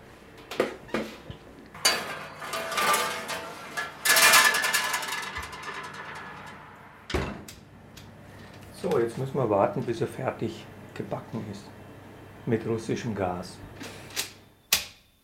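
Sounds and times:
metal pans and bakeware clattering as a strudel is put into the oven: 1.8s - 7.3s
speech: 8.8s - 11.8s, 12.4s - 13.7s.

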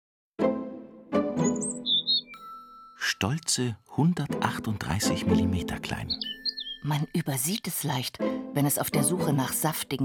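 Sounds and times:
European robin singing thin high whistled notes: 1.3s - 8.3s
speech: 3.0s - 10.0s.

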